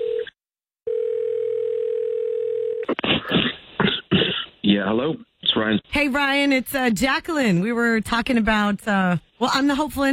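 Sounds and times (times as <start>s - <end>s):
outgoing phone call to an office number ringing tone: 0.0s - 2.9s
speech: 4.8s - 10.1s.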